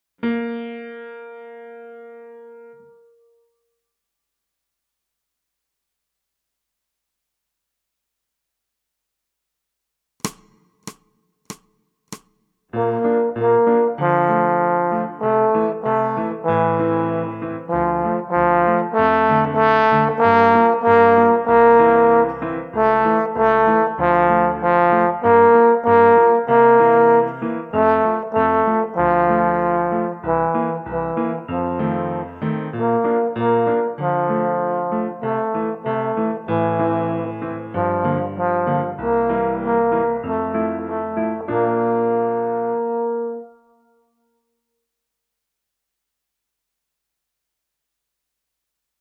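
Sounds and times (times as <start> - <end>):
grand piano: 0.2 - 3.8, 12.7 - 44.0
small trombone: 12.8 - 43.6.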